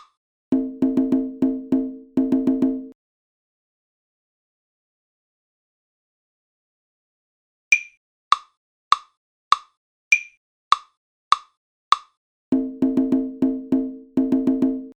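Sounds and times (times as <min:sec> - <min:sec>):
rhythm dictation exercise: 0:00.5 - 0:02.9, 0:12.5 - 0:14.9.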